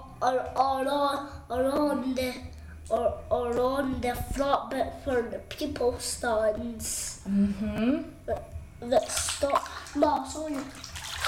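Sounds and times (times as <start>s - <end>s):
child chattering and humming: 0.0s - 10.7s
speech: 0.2s - 10.9s
water splashing in a bathtub as a child blows waves: 8.8s - 11.2s.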